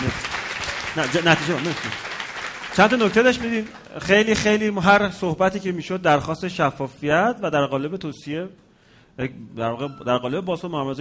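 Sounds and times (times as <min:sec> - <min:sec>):
audience applause: 0:00.0 - 0:03.9
speech: 0:00.1 - 0:00.3, 0:01.0 - 0:02.1, 0:02.8 - 0:08.6, 0:09.2 - 0:10.9.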